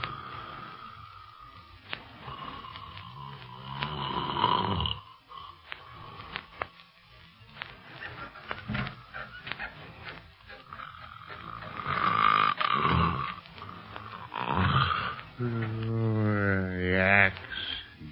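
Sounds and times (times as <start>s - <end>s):
loud rumbling snoring: 0.0s - 6.6s, 10.5s - 18.0s.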